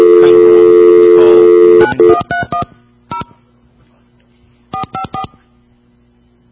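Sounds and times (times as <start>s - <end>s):
touch-tone beeps of a phone being dialed: 0.0s - 3.3s, 4.7s - 5.4s.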